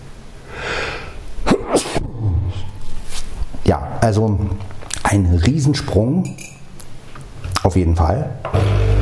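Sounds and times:
breathy hitching inhale: 0.4 - 1.2
person sneezing: 0.6 - 2.7
speech: 3.7 - 6.4, 7.6 - 8.9.

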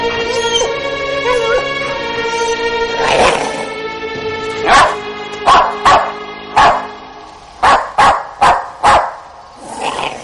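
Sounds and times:
dog howling inside a barn: 0.2 - 3.2
dog barking inside a barn: 4.7 - 6.9, 7.6 - 9.2.

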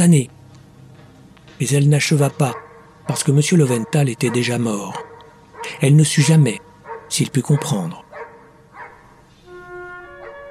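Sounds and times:
speech: 0.0 - 0.4, 1.6 - 8.0
dog barking in exasperation: 2.5 - 9.1, 10.2 - 10.4
steady tonal whine: 9.2 - 10.4.

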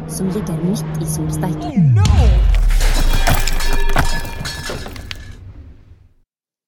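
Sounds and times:
speech: 0.1 - 2.6
stone troll crashing and smashing apart into small stones: 2.2 - 5.4
rush of scattering pebbles rattling: 2.6 - 5.4.

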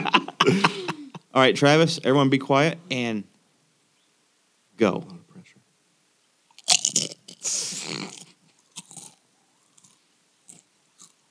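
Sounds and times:
laughter: 0.0 - 1.3
speech: 0.5 - 0.8, 1.4 - 3.3, 4.8 - 5.2
thin crispy chip being bitten and chewed: 6.5 - 11.2.

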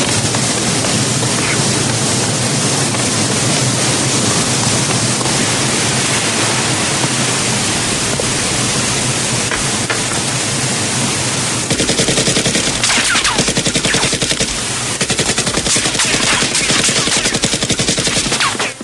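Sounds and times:
steady rushing noise of a waterfall: 0.0 - 18.8
rapid automatic gunfire by a waterfall: 11.7 - 18.8.

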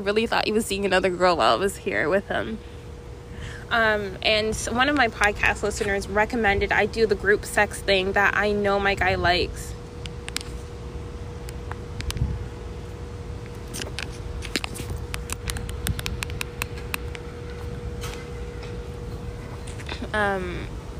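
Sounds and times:
speech: 0.0 - 2.7, 3.7 - 9.8, 20.2 - 20.8
faint constant hum: 0.0 - 20.9
wind buffeting microphone outdoors: 11.0 - 20.9
sharp clicks and ticks: 13.7 - 17.3.

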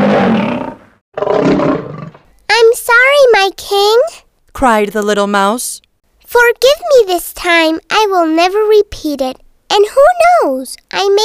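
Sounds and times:
lion roaring: 0.0 - 2.2
speech: 3.5 - 11.2.

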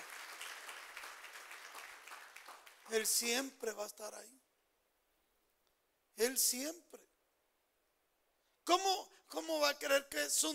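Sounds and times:
crowd applauding: 0.0 - 3.1
speech: 2.9 - 4.4, 6.2 - 7.1, 8.7 - 10.5.

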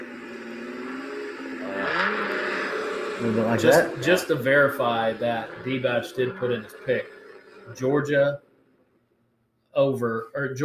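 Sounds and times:
voice imitating a revving V8 car engine: 0.0 - 8.4
speech: 3.2 - 8.4, 9.8 - 10.6.

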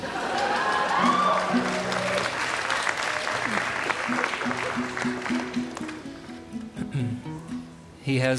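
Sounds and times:
festival audience whooping and shouting: 0.0 - 5.4
large outdoor festival audience clapping: 0.0 - 6.4
speech: 8.1 - 8.3.

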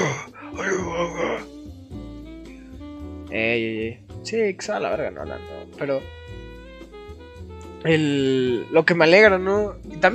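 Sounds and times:
man growling in exaggerated hoarse gravelly superhero voice: 0.0 - 1.5
speech: 3.3 - 6.2, 7.8 - 10.1.

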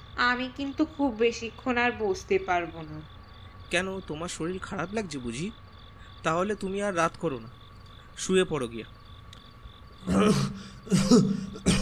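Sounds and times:
speech: 0.2 - 5.6, 6.2 - 7.6, 8.2 - 9.0, 10.0 - 11.7
harsh throaty coughs from an ailing elderly father at home: 10.1 - 11.7.

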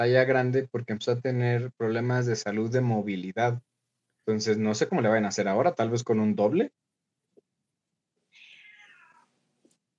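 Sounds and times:
speech: 0.0 - 6.8
female cat meowing: 8.3 - 9.4.

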